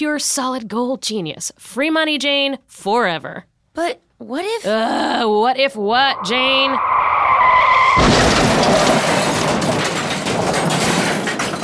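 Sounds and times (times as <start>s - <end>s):
speech: 0.0s - 7.1s
bus tire squeal: 6.0s - 9.6s
bus crashing into pole: 7.0s - 11.6s
clattering debris: 7.7s - 11.6s.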